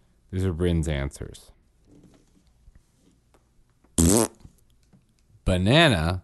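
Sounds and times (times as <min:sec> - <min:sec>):
speech: 0:00.3 - 0:01.6, 0:05.5 - 0:06.2
loud brassy buzzing fart sound: 0:04.0 - 0:04.5.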